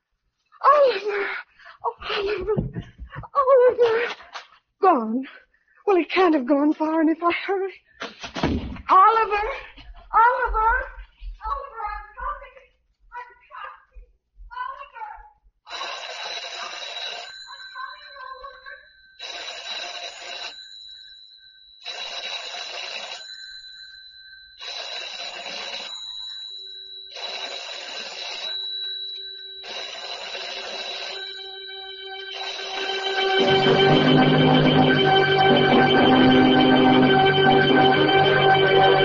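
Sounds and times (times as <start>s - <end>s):
speech: 2.1s - 4.2s, 4.8s - 7.9s, 8.5s - 10.9s
old-fashioned telephone bell ringing in an empty house: 15.7s - 39.0s.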